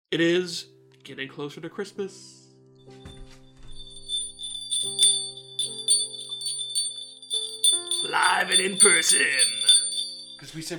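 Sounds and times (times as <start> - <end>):
speech: 0.1 - 3.0, 8.1 - 9.7, 10.4 - 10.7
jingle bells on a door knocker shaken: 3.7 - 10.7.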